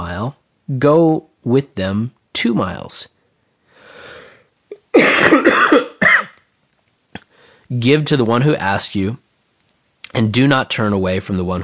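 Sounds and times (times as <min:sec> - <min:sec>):
speech: 0:00.2 - 0:03.1, 0:07.7 - 0:09.2, 0:10.1 - 0:11.6
soft breathy inhale: 0:03.6 - 0:04.6, 0:07.2 - 0:07.7
person with allergies coughing harshly: 0:04.7 - 0:06.4.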